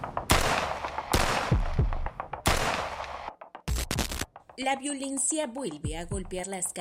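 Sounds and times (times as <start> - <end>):
rapid bursts of gunfire fired at a taxi: 0.3 - 3.3
speech: 4.6 - 6.8.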